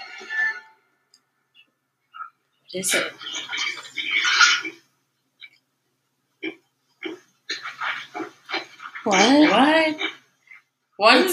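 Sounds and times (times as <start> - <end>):
speech: 2.7 - 4.1, 9.0 - 10.1, 11.0 - 11.3
pig grunting, oinking and squealing: 2.9 - 4.8, 6.4 - 10.2.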